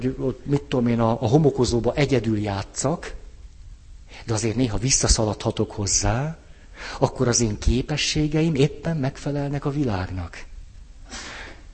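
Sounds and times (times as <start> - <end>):
speech: 0.0 - 3.2, 4.1 - 10.5
person sneezing: 11.1 - 11.6.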